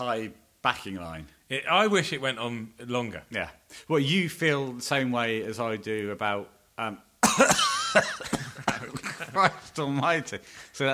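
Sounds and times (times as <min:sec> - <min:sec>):
speech: 0:00.0 - 0:10.9
harsh coughing fit: 0:07.2 - 0:09.3
laughter: 0:07.4 - 0:10.3.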